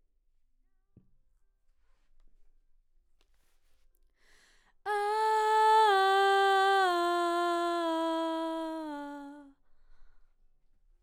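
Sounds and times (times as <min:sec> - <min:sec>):
background vocals: 0:04.9 - 0:09.5.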